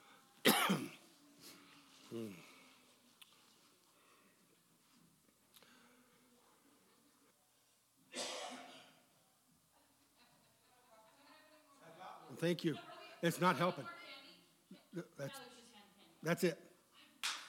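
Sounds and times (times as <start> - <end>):
person coughing harshly: 0.4 - 1.0, 8.1 - 9.1
speech: 0.7 - 0.9, 2.1 - 2.5, 12.4 - 14.0, 14.9 - 15.6, 16.2 - 16.7.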